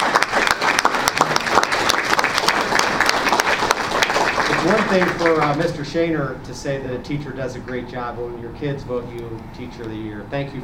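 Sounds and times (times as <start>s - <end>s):
crowd applauding for a teacher: 0.0s - 5.7s
speech: 4.6s - 10.6s.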